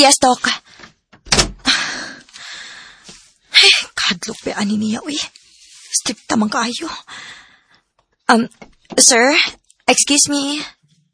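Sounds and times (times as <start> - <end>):
speech: 0.0 - 0.6, 4.2 - 7.4, 8.3 - 10.8
door pushed shut with solid thuds: 1.2 - 1.7
lingering broadband rustle: 4.0 - 6.8.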